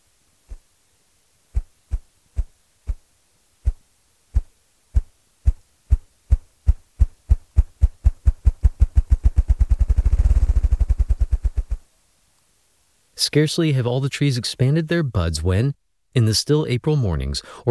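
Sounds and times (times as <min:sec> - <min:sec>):
bird drumming with its wings on a decayed crumbling log in spring: 0:01.5 - 0:11.9
speech: 0:13.3 - 0:17.6.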